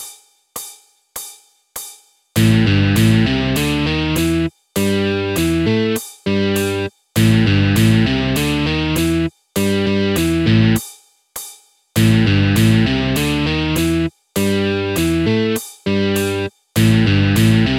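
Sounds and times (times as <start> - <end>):
musical motif at tempo 100: 2.4 - 10.8, 12.0 - 17.7.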